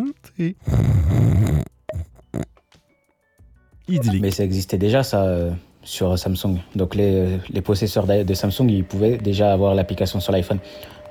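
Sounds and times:
speech: 0.2s - 1.5s, 3.9s - 11.0s
voice imitating snoring with grunts and breathy bursts: 0.3s - 2.6s.

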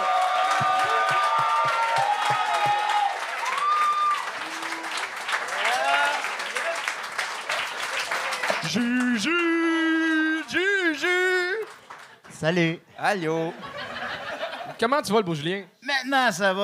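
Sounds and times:
crowd cheering and whooping: 0.0s - 6.8s, 7.5s - 10.8s
audience applauding: 0.0s - 12.4s
speech: 8.7s - 9.8s, 12.4s - 13.7s, 14.8s - 16.6s
laughter: 13.4s - 14.8s.

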